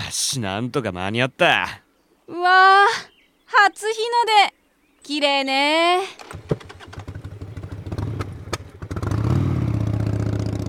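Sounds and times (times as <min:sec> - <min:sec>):
speech: 0:00.1 - 0:06.5
motorcycle engine sputtering and revving as a monkey rides away: 0:06.2 - 0:10.6.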